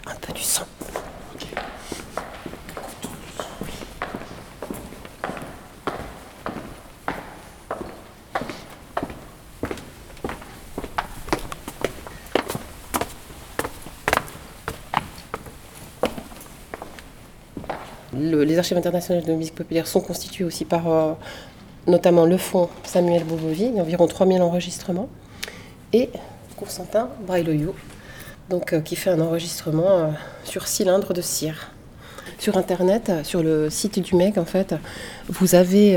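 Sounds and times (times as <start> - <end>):
footsteps walking up to a lounge: 0.0 - 18.2
speech: 0.1 - 2.1, 18.2 - 25.2, 25.9 - 27.9, 28.5 - 31.8, 32.4 - 35.9.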